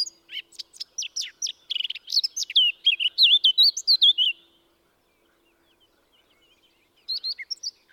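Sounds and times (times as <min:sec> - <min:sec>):
Eurasian blackcap Sylvia atricapilla song: 0:00.0 - 0:07.9.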